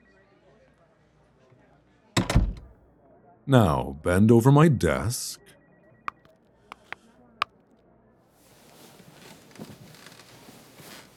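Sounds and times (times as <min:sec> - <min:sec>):
short rattle of a door: 0:02.2 - 0:02.7
door pushed shut with a solid thud: 0:02.2 - 0:02.8
speech: 0:03.5 - 0:05.5.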